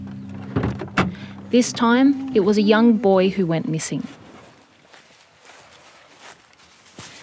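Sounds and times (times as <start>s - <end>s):
speech: 1.5s - 4.2s
footsteps crunching along an outdoor walking path past banyan trees: 4.0s - 7.2s.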